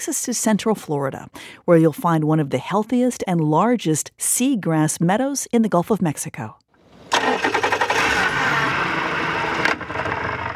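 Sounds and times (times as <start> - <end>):
speech: 0.0 - 6.6
small boat motor starting, revving and chugging: 6.9 - 10.5.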